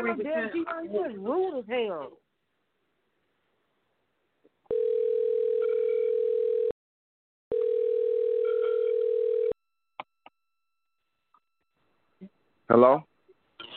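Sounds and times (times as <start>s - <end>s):
speech: 0.0s - 2.2s, 12.7s - 13.1s
telephone tone after a disconnected call: 4.7s - 6.8s, 7.5s - 9.6s.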